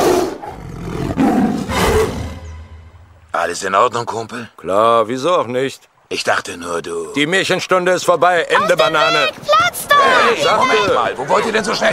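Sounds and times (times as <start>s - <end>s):
tiger roaring: 0.0s - 2.5s
speech: 3.4s - 11.9s.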